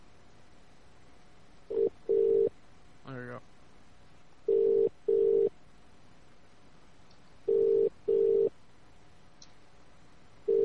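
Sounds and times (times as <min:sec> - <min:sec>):
telephone ringback tone on an outgoing call: 0:01.7 - 0:02.5, 0:04.5 - 0:05.5, 0:07.5 - 0:08.5, 0:10.5 - 0:10.6.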